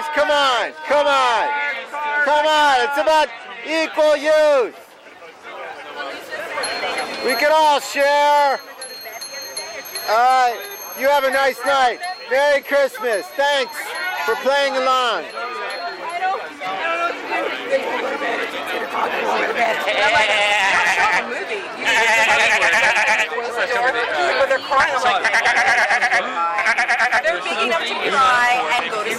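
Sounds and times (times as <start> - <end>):
people chattering: 0.0 - 29.1
speech: 0.2 - 4.8, 7.2 - 8.7, 10.1 - 15.4, 19.0 - 29.1
sheep bleating: 19.8 - 23.3, 25.1 - 27.4.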